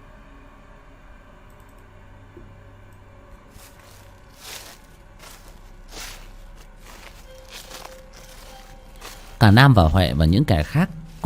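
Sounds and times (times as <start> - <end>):
footsteps trampling through dry fallen leaves at night: 3.5 - 11.2
speech: 9.4 - 11.2.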